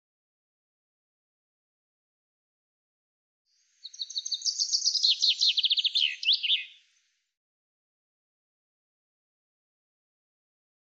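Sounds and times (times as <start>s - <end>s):
common chaffinch song: 3.6s - 7.2s.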